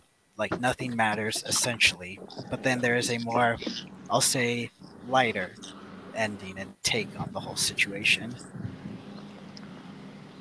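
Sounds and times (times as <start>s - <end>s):
speech: 0.4s - 8.7s
tractor engine rumbling outside: 0.4s - 10.3s.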